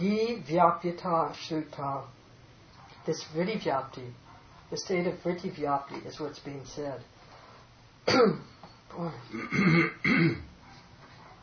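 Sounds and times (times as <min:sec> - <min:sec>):
speech: 0:00.0 - 0:02.2, 0:03.1 - 0:07.1, 0:08.0 - 0:10.5
person clearing throat: 0:08.1 - 0:08.5, 0:09.3 - 0:10.5.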